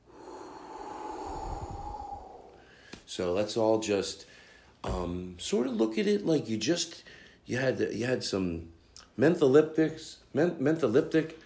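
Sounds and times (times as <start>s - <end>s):
deep breath in and exhale: 0.0s - 3.1s, 4.2s - 4.8s, 7.0s - 7.4s
speech: 3.1s - 11.4s.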